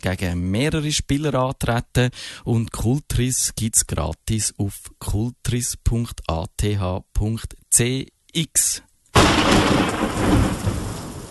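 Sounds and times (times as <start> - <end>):
speech: 0.0 - 10.6
heavy rain hissing: 9.2 - 11.2
thunder crack rolling into a sustained rumble: 9.2 - 11.2.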